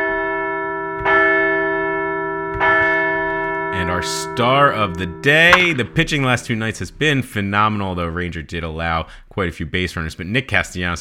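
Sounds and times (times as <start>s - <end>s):
large bell ringing to celebrate baseball wins: 0.0s - 6.9s
speech: 3.9s - 11.0s.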